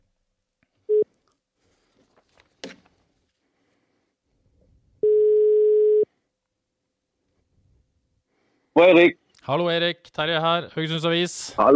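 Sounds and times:
faint handling noise: 0.6s - 3.4s
ringback tone of an outgoing phone call: 0.9s - 1.1s, 5.0s - 6.1s
speech: 8.8s - 11.7s.

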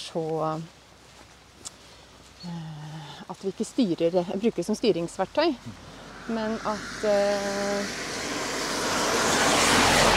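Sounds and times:
speech: 0.1s - 0.8s, 2.4s - 8.2s
outdoor traffic roar: 4.6s - 10.1s
vehicle passing: 5.5s - 10.1s.

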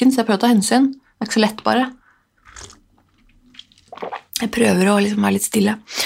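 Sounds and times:
speech: 0.0s - 2.0s, 4.0s - 6.0s
liquid mouth bursts: 2.4s - 4.4s
person slurping a sip of hot cocoa: 2.4s - 4.4s.

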